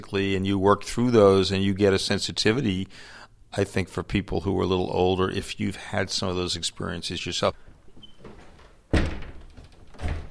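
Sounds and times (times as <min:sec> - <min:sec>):
speech: 0:00.0 - 0:07.6
large wooden door slamming shut in a unit of a Victorian house: 0:08.2 - 0:10.2.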